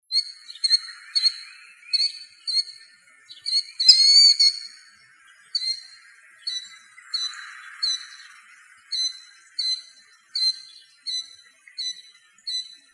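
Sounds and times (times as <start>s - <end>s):
Killdeer shrill high calls: 0.1s - 12.9s.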